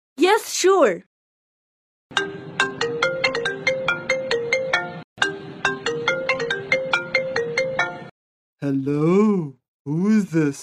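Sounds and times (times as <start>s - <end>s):
speech: 0.4s - 1.1s, 8.6s - 10.6s
bright melodic electronic phone ringtone during an outgoing call: 2.1s - 8.1s.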